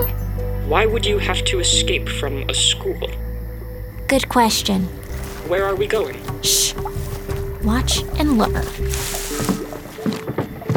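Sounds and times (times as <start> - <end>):
speech: 0.7 - 3.2, 4.1 - 6.9, 7.6 - 9.5
water splashing and gurgling from a small boat's hull or oars at night: 4.1 - 10.7.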